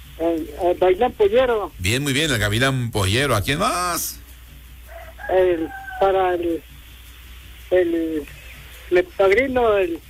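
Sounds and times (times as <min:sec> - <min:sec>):
faint hum: 0:00.0 - 0:10.0
speech: 0:00.2 - 0:04.2, 0:05.3 - 0:06.7, 0:07.7 - 0:10.0
rooster crowing: 0:04.9 - 0:06.5.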